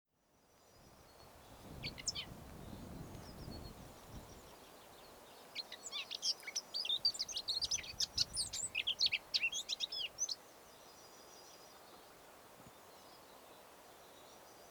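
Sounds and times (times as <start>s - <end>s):
Eurasian blackcap Sylvia atricapilla warbling song: 0.6s - 12.0s.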